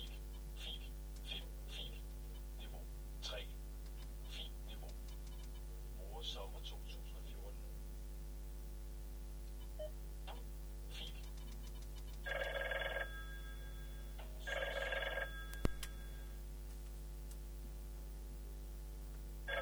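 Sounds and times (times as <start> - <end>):
quiet hum: 0.0 - 19.6
telephone in a radio studio ringing with an electric bell: 12.2 - 16.4.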